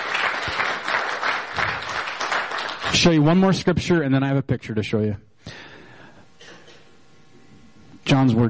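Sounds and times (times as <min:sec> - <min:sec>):
audience applauding: 0:00.0 - 0:03.4
speech: 0:02.9 - 0:05.3, 0:08.2 - 0:08.4.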